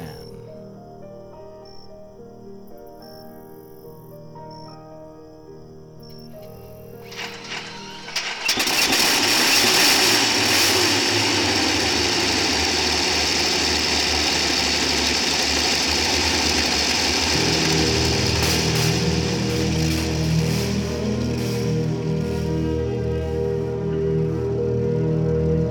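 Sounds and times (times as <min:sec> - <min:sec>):
tank engines starting and idling: 0:07.1 - 0:25.6.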